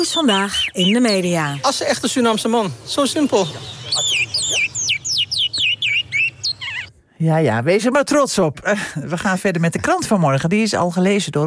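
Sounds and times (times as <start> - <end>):
speech: 0.0 - 4.3, 7.2 - 11.4
songbird chirping: 0.0 - 7.0.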